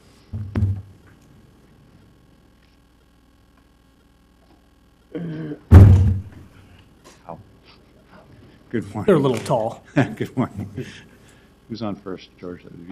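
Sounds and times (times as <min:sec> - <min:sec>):
heavy wooden thunk: 0:00.4 - 0:00.9, 0:05.7 - 0:06.3
speech: 0:08.7 - 0:11.1, 0:11.7 - 0:12.9
laughter: 0:09.8 - 0:11.2.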